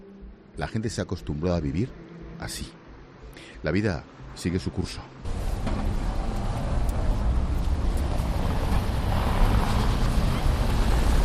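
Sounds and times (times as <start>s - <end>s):
speech: 0.6s - 2.8s, 3.4s - 5.9s
heavy city-centre street traffic roar: 5.2s - 11.2s.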